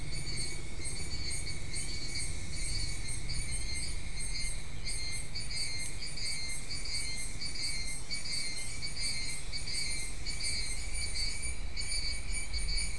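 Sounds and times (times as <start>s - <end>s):
insects chirping in a shrill high-pitched chorus: 0.0s - 12.9s.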